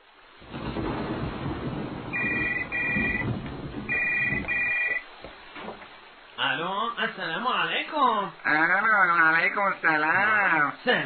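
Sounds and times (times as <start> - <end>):
rain: 0.0 - 11.0
telephone ringing with bright electronic trilling: 2.1 - 3.3, 3.9 - 5.0
speech: 6.6 - 11.0.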